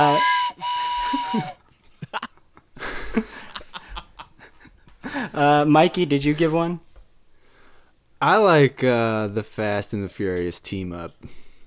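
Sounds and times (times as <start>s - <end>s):
loud steady train whistle blowing: 0.0s - 1.6s
people laughing: 0.7s - 5.4s
speech: 5.4s - 6.8s, 8.2s - 11.4s.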